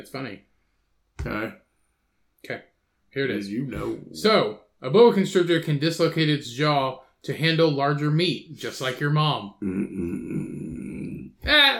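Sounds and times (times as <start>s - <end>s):
speech: 0.0s - 0.5s, 1.2s - 1.6s, 2.4s - 10.4s, 11.4s - 11.7s
long low rumbling burp: 9.5s - 11.4s.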